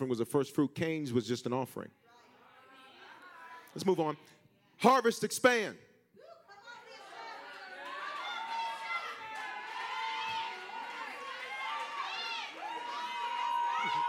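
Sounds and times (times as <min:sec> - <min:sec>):
speech: 0:00.0 - 0:02.1, 0:03.8 - 0:05.9
church audience shouting and cheering: 0:06.2 - 0:14.0.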